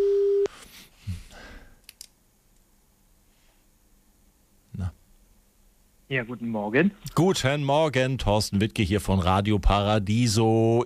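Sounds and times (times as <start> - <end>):
telephone ringing tone while call connects: 0.0 - 0.5
speech: 6.1 - 10.8.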